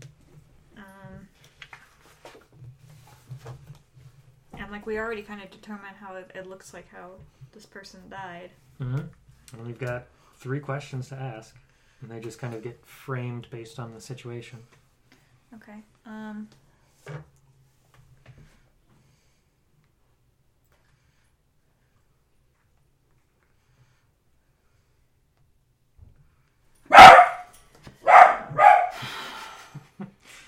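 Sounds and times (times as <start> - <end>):
speech: 4.7 - 14.8, 15.5 - 17.3
dog barking: 26.9 - 29.0.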